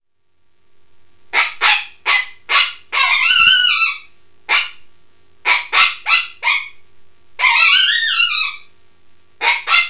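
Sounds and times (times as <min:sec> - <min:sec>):
coyote yips and howls: 0:01.3 - 0:04.8, 0:05.4 - 0:06.8, 0:07.4 - 0:08.7, 0:09.4 - 0:09.8.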